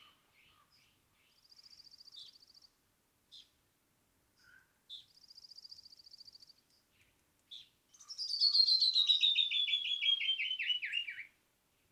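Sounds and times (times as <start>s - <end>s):
canyon wren song: 8.2s - 11.3s.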